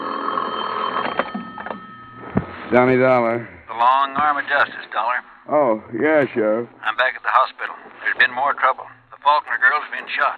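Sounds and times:
telephone bell ringing in a bedroom: 0.0 - 3.1
speech: 2.7 - 10.3.

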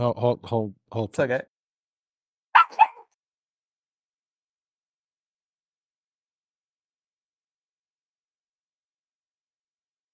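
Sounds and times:
speech: 0.0 - 1.5
dog barking: 2.6 - 3.1.

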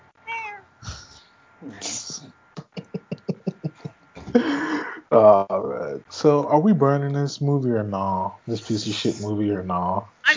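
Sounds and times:
kitten meowing: 0.2 - 0.6
speech: 1.6 - 2.4, 5.1 - 10.3
laughter: 1.8 - 5.3.

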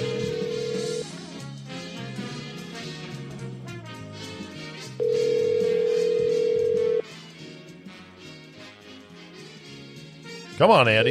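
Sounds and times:
ringback tone of an outgoing phone call: 0.0 - 1.2, 5.0 - 7.0
low music bed: 0.0 - 11.0
speech: 10.6 - 11.0.

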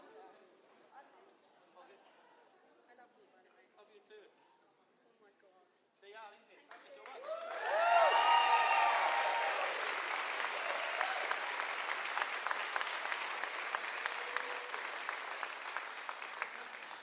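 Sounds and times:
crowd applauding: 6.7 - 17.0
whoops and cheers: 7.2 - 11.6, 14.0 - 15.1.

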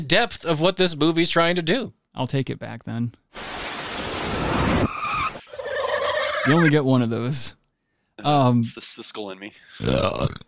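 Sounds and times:
speech: 0.0 - 3.6, 6.4 - 7.6, 8.2 - 10.4
car crash: 3.3 - 5.5
car tires skidding: 3.8 - 6.4.

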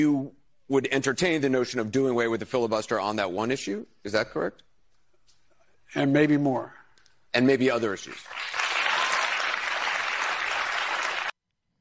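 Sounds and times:
speech: 0.0 - 4.7, 5.9 - 8.6
audience applause: 8.2 - 11.4.

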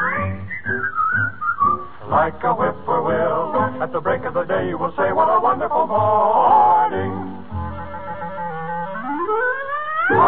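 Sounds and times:
person whistling a sliding melody with their lips: 0.0 - 2.0
low steady musical accompaniment: 0.0 - 10.2
speech: 2.1 - 7.3.

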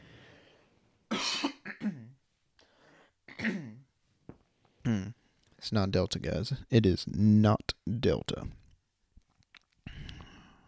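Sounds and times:
person clearing throat: 1.1 - 2.2, 3.3 - 3.9
speech: 5.6 - 8.6.

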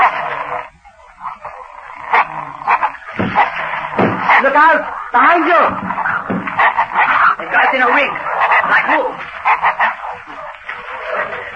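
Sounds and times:
several hounds barking and baying: 0.0 - 11.5
speech: 5.1 - 6.8, 7.7 - 10.3.

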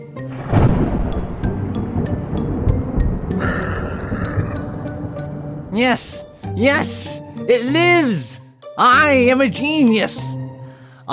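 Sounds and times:
thunder crack from a storm over a laboratory: 0.3 - 6.4
speech: 5.8 - 10.4.

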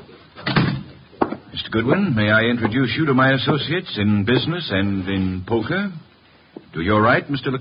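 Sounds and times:
door opening and shutting: 0.4 - 1.0
speech: 1.7 - 6.0, 6.8 - 7.6.

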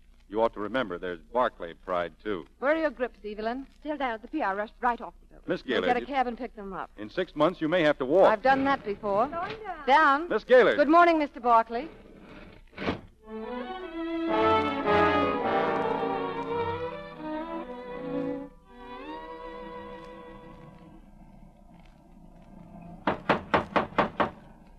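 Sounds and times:
speech: 0.3 - 12.0, 12.8 - 14.5
orchestral music: 13.2 - 21.0
knocking on the front door of a house: 23.0 - 24.4.

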